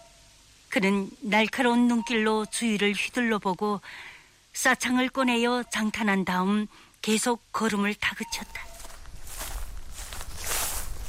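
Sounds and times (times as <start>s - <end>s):
speech: 0.7s - 8.7s
footsteps crunching and rustling through dry grass: 8.4s - 11.0s.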